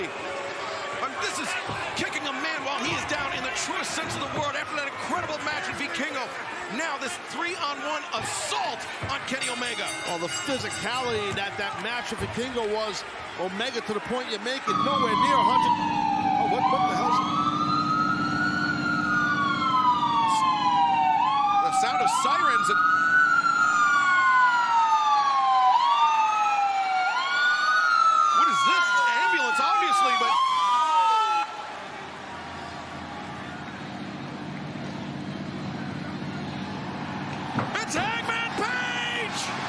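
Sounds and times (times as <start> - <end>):
crowd roaring: 0.0 - 17.1, 28.3 - 39.6
speech: 1.2 - 2.0, 3.6 - 17.4, 22.2 - 23.2
ambulance siren wailing in rising-and-falling sweeps: 14.6 - 31.7.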